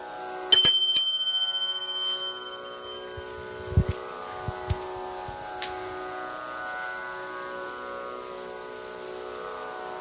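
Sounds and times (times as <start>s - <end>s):
meditation bell being struck: 0.5s - 8.2s
soft low thumps: 3.0s - 5.8s.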